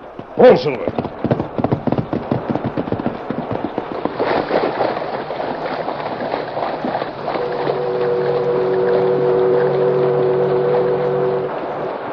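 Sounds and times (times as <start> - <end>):
boat engine chugging on a river: 0.0 - 12.1
churning river water: 0.0 - 12.1
speech: 0.4 - 1.4
sustained whistle-like tone from boat engine: 7.3 - 11.6.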